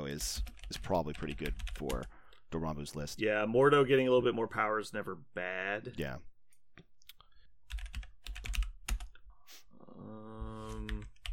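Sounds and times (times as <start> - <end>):
speech: 0.1 - 6.3
typing on a computer keyboard: 0.2 - 2.4, 7.7 - 9.1, 10.8 - 11.3.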